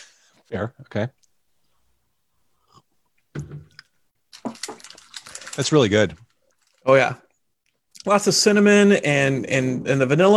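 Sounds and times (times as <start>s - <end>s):
speech: 0.5s - 1.2s, 5.6s - 7.2s, 8.0s - 10.3s
person sipping whiskey: 2.5s - 3.1s.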